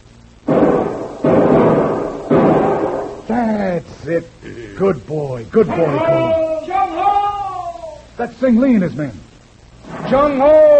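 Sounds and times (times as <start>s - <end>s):
loud rifle shots: 0.5s - 3.2s
speech: 3.3s - 6.5s, 8.2s - 9.3s, 10.1s - 10.7s.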